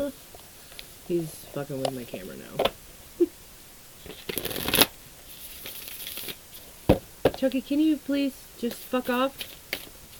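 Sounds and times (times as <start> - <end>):
speech: 1.1 - 2.8, 7.4 - 9.6
affirmation cards riffling and sliding as one is drawn from a deck: 4.0 - 6.7, 8.7 - 10.1.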